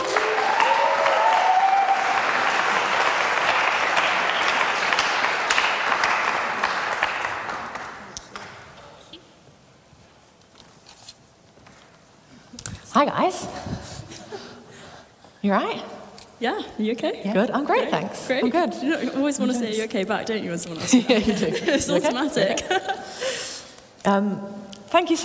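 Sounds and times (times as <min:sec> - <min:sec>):
crowd clapping and applauding: 0:00.0 - 0:08.6
quiet room noise: 0:00.0 - 0:25.2
speech: 0:13.0 - 0:13.7, 0:15.4 - 0:23.2, 0:24.0 - 0:25.2
laughter: 0:20.8 - 0:23.5.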